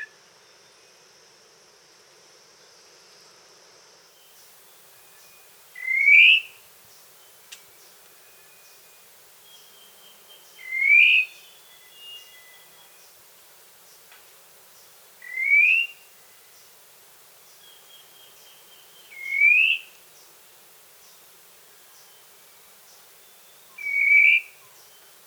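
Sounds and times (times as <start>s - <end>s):
birds of the Costa Rican cloud forest singing and calling: 4.4s - 25.2s.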